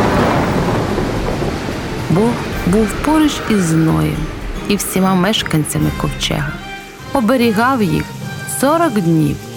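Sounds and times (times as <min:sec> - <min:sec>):
deep rolling thunder during a storm: 0:00.0 - 0:07.3
heavy rain hissing: 0:00.0 - 0:09.5
speech: 0:02.2 - 0:06.6, 0:07.2 - 0:09.5.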